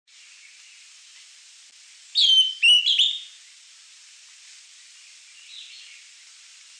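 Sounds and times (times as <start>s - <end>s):
faint steady hiss: 0.1s - 6.7s
Greenish Schiffornis (Schiffornis virescens) whistling two high notes: 2.2s - 3.3s.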